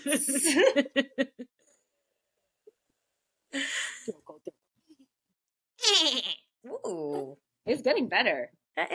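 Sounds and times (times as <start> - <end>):
speech: 0.0 - 1.3, 6.9 - 8.9
person imitating a goat's bleat with their voice: 5.8 - 6.4.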